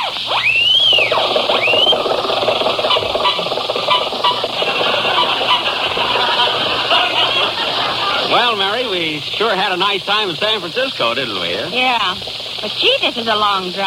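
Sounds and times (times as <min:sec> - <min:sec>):
squealing whistle-like sweeps: 0:00.3 - 0:02.0
old Maxwell car engine running on the highway: 0:00.5 - 0:13.8
laughter: 0:03.3 - 0:09.2
speech: 0:09.2 - 0:13.8.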